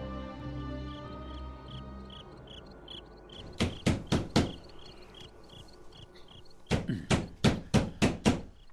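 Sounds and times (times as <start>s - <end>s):
nighttime chorus of chirping insects: 0.4s - 8.7s
sharp knocking on a door: 3.4s - 4.7s, 6.7s - 8.5s.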